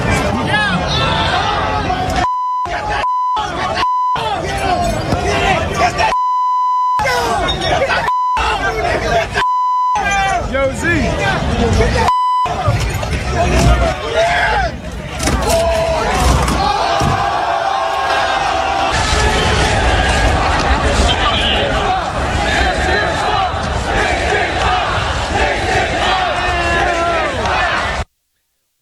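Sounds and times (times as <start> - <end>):
crowd rioting and shouting in the streets of New York City during a championship celebration: 0.1 - 28.0
bleep tones: 2.3 - 15.6
laughter: 2.3 - 19.1.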